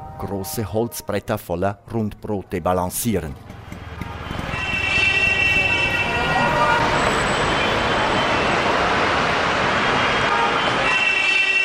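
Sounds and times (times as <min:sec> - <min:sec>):
speech: 0:00.2 - 0:03.5
steady roar of dense street traffic engines in a metropolis on the Nile: 0:03.3 - 0:11.6
horn-like tones: 0:04.3 - 0:08.6, 0:10.0 - 0:11.6.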